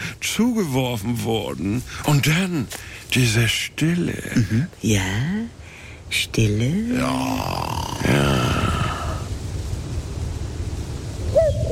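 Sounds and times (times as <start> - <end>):
steady low rumble of wind or outdoor noise: 0.0 - 11.7
speech: 0.3 - 8.7
cuckoo calling: 11.3 - 11.7.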